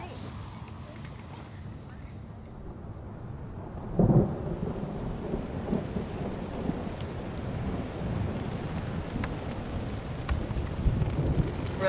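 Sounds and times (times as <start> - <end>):
deep thunder rumbling during storm: 2.4 - 11.8
heavy rain during storm: 2.5 - 11.8.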